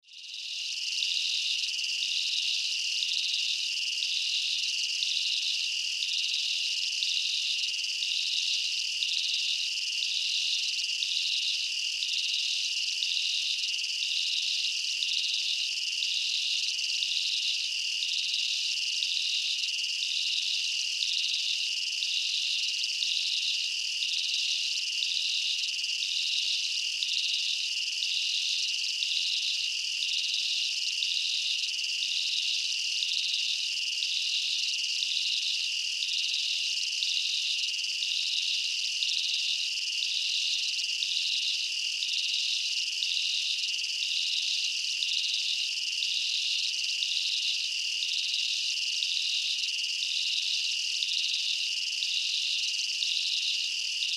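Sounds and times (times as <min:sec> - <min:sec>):
insects chirping in a jungle at night: 0:00.2 - 0:54.1.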